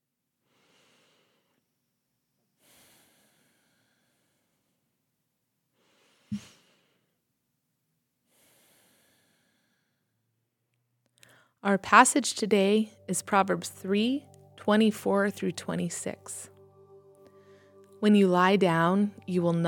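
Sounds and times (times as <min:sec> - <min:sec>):
deep breaths: 0:00.5 - 0:01.7, 0:02.6 - 0:05.0, 0:05.7 - 0:07.2, 0:08.2 - 0:10.4, 0:11.2 - 0:11.6, 0:17.2 - 0:17.9
speech: 0:11.6 - 0:16.5, 0:18.0 - 0:19.6.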